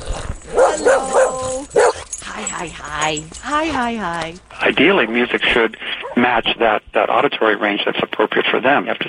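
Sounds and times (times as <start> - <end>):
dog yelping and whining: 0.4 - 2.2
dog barking: 0.5 - 2.1
speech: 2.6 - 9.0.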